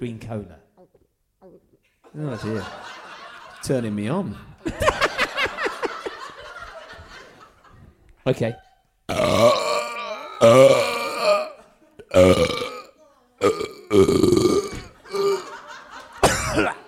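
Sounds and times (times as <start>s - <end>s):
speech: 0.0s - 0.6s, 2.1s - 3.0s, 3.6s - 5.1s, 8.2s - 9.7s, 12.1s - 12.6s, 13.4s - 14.4s
laughter: 2.1s - 8.9s, 14.8s - 16.8s
long loud croaking belch: 9.1s - 15.6s.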